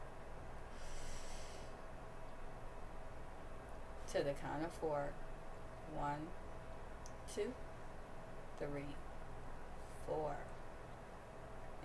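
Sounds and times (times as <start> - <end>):
noise: 0.0 - 11.8
deep breath in during a guided mindfulness break: 0.7 - 1.8
speech: 4.1 - 5.3, 5.9 - 6.5, 7.3 - 7.7, 8.6 - 9.0, 10.1 - 10.5.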